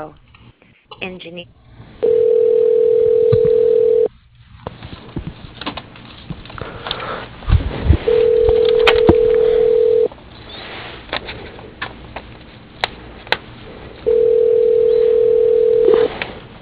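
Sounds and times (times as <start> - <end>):
speech: 0.0 - 0.2, 1.0 - 1.6
telephone ringback tones on an aluminum extrusion manufacturer's line: 2.0 - 4.1, 8.1 - 10.1, 14.1 - 16.1
telephone line clicks: 8.1 - 10.1.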